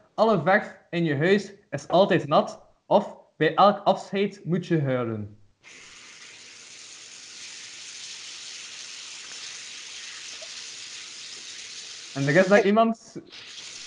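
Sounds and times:
speech: 0.2s - 5.9s, 12.2s - 13.6s
meat sizzling in a frying pan in a kitchen: 5.6s - 12.6s, 13.3s - 13.8s.

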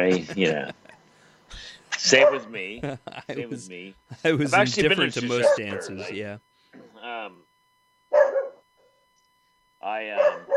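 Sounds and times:
speech: 0.0s - 0.8s, 1.5s - 7.5s, 9.8s - 10.5s
laughter: 0.0s - 6.3s
dog barking in short yappy whiny bursts: 2.2s - 2.5s, 5.4s - 5.9s, 8.1s - 8.6s, 10.2s - 10.5s.

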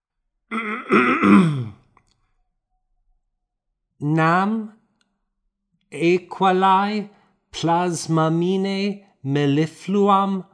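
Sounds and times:
speech: 0.5s - 1.8s, 4.0s - 4.8s, 5.9s - 10.5s
man clearing his throat before reading aloud: 0.5s - 1.9s.

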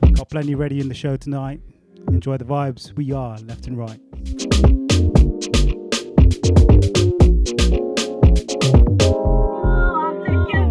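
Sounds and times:
samba music track: 0.0s - 0.9s, 3.2s - 10.6s
speech: 0.2s - 5.3s.

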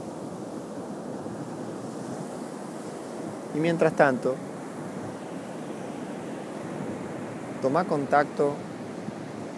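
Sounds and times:
steady wash of ocean surf: 0.0s - 9.5s
calm voice guiding a breathing meditation: 3.6s - 4.4s, 7.6s - 8.6s
speech: 3.6s - 4.5s, 7.6s - 8.7s.

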